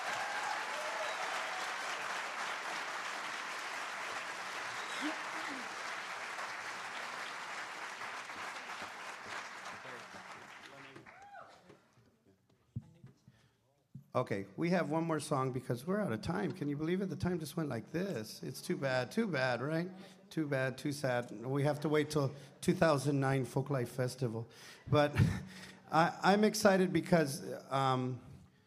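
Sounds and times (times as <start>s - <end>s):
scattered claps: 0.0s - 11.3s
large audience applauding student folk musicians: 0.0s - 11.5s
speech: 14.2s - 28.3s.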